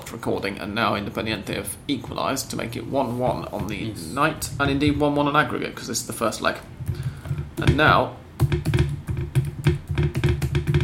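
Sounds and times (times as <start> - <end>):
speech: 0.1 - 7.0, 7.6 - 8.7
laptop clattering against a coffee table while typing: 6.8 - 10.8
typing on a laptop: 8.4 - 10.8.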